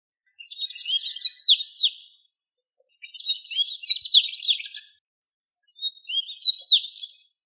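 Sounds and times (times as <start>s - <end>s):
bird twittering chirps: 0.3s - 2.3s, 2.9s - 5.0s, 5.6s - 7.4s.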